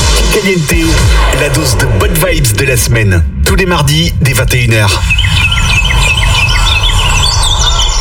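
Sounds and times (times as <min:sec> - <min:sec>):
steady low rumble: 0:00.0 - 0:07.9
speech: 0:00.4 - 0:05.4
small birds chirping with high-pitched tweets: 0:04.7 - 0:07.9.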